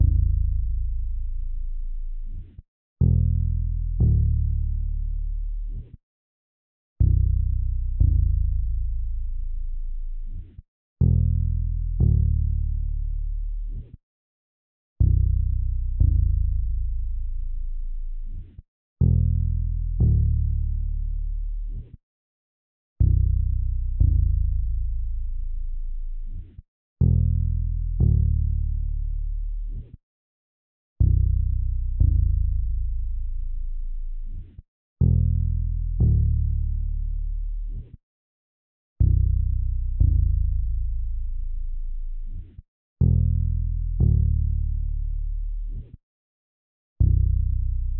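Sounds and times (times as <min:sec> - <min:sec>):
bass line in A minor at 120 BPM: 0:00.0 - 0:02.4, 0:03.0 - 0:05.8, 0:07.0 - 0:10.4, 0:11.0 - 0:13.8, 0:15.0 - 0:18.4, 0:19.0 - 0:21.8, 0:23.0 - 0:26.4, 0:27.0 - 0:29.8, 0:31.0 - 0:34.4, 0:35.0 - 0:37.8, 0:39.0 - 0:42.4, 0:43.0 - 0:45.8, 0:47.0 - 0:47.9.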